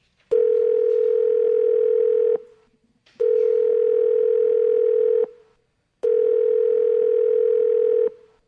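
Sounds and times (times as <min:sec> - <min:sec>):
telephone ringing tone on a call to an office line: 0:00.3 - 0:02.5, 0:03.2 - 0:05.4, 0:06.0 - 0:08.2.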